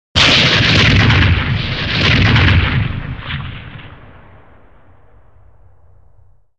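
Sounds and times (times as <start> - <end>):
hull hit explosions: 0.2 - 6.3.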